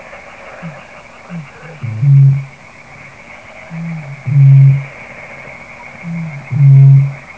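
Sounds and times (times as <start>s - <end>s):
Botaurus stellaris: 0.6s - 2.5s, 3.7s - 4.9s, 6.0s - 7.2s.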